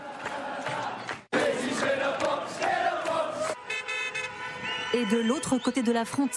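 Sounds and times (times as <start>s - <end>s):
stadium crowd chanting and singing in unison in Dublin Ireland: 0.0s - 3.6s
car horns honking in Londonderry Northern Ireland: 3.4s - 6.3s
speech: 4.9s - 6.3s.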